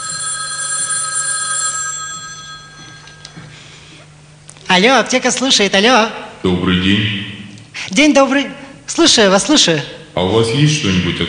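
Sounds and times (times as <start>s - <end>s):
electronic telephone ringing during a call to a pharmacy: 0.0s - 3.5s
speech: 4.7s - 7.3s, 7.9s - 11.2s.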